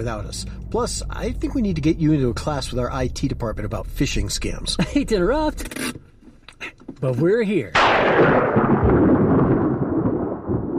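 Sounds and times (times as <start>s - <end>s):
speech: 0.0s - 6.0s, 7.0s - 8.7s
loud thunder clap with a rattling edge: 7.8s - 10.7s.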